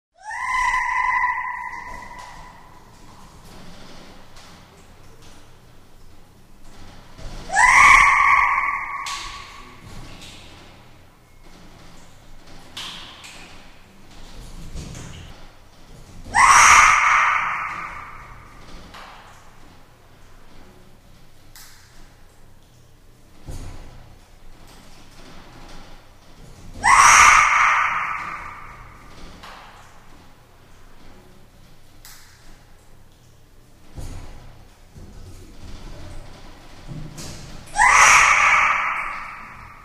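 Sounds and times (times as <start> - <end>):
monkeys calling: 0.2 - 2.9, 7.5 - 10.2, 16.4 - 18.5, 26.8 - 29.0, 37.7 - 39.8.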